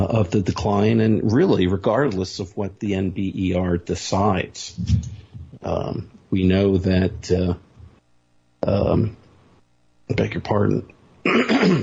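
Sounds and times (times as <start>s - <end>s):
speech: 0.1s - 7.6s, 8.6s - 9.2s, 10.1s - 11.8s
throat clearing: 11.3s - 11.8s.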